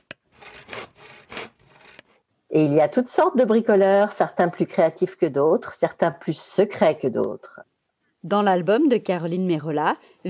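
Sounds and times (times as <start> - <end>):
hand saw cutting through wood: 0.0 - 2.2
speech: 2.5 - 10.2.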